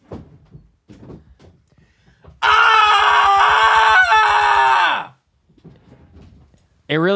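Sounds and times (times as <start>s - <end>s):
person screaming imitating a comedian yelling into a microphone: 2.4s - 5.2s
speech: 6.9s - 7.1s.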